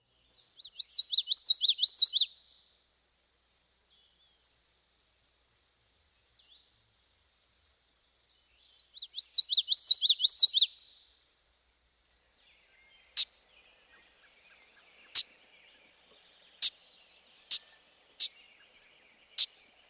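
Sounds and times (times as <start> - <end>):
common yellowthroat singing witchity song: 0.0 - 2.6, 7.9 - 11.0, 12.4 - 19.8.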